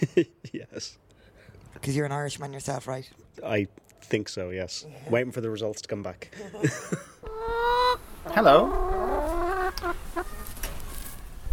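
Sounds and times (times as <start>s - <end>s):
speech: 0.0s - 1.0s, 1.8s - 9.2s
laughter: 6.2s - 7.2s
chickens clucking: 7.2s - 11.1s.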